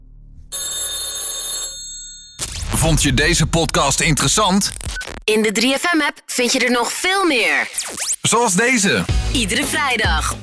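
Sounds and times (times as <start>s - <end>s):
old-fashioned telephone bell ringing: 0.5s - 2.6s
speech: 2.8s - 10.4s.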